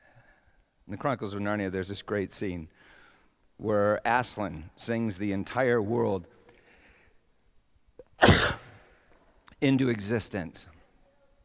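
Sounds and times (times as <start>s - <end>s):
speech: 0.9s - 3.0s, 3.6s - 6.4s, 9.6s - 10.8s
person sneezing: 8.0s - 8.9s.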